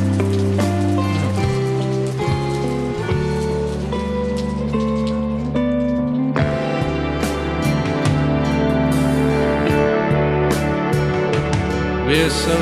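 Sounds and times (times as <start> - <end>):
steady rain pattering softly: 0.0 - 9.8
loud sustained music with layered instruments and held notes: 0.0 - 12.6.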